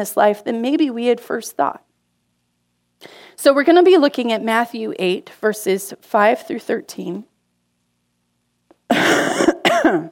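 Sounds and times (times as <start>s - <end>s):
speech: 0.0s - 1.9s, 3.0s - 7.3s, 9.9s - 10.0s
man coughing: 8.9s - 10.0s.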